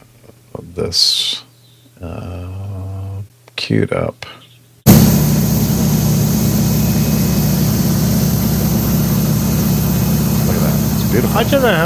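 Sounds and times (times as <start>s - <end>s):
speech: 0.8s - 1.4s, 2.0s - 2.4s, 3.7s - 4.4s, 11.1s - 11.8s
DC-3 aircraft propeller engines turning slowly: 4.9s - 11.8s.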